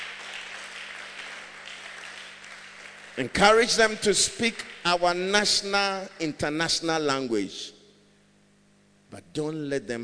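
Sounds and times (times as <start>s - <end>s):
audience clapping: 0.0s - 5.3s
speech: 3.2s - 7.8s, 9.1s - 10.0s.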